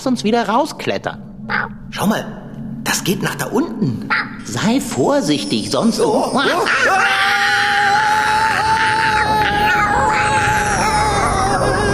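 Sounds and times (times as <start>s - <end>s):
speech: 0.0s - 7.4s
people screaming while falling: 6.4s - 11.9s.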